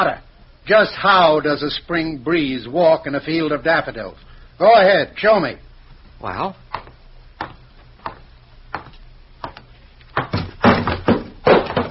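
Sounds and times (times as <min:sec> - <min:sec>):
speech: 0:00.0 - 0:06.9
sharp knocks of an ashtray: 0:06.7 - 0:09.6, 0:10.2 - 0:11.8.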